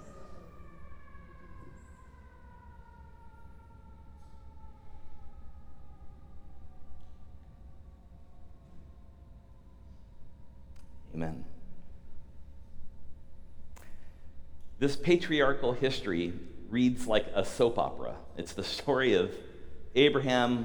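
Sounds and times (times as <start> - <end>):
fire engine siren wailing outside: 0.0 - 8.9
speech: 11.2 - 11.5, 14.8 - 20.6.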